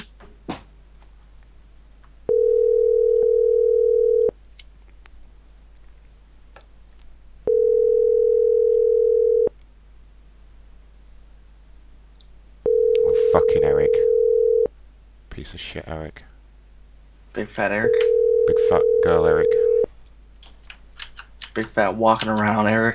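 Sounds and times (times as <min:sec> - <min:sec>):
telephone ringing tone from a call being placed: 0:02.3 - 0:04.3, 0:07.5 - 0:09.5, 0:12.7 - 0:14.7, 0:17.8 - 0:19.9
speech: 0:17.4 - 0:19.7, 0:21.6 - 0:22.9.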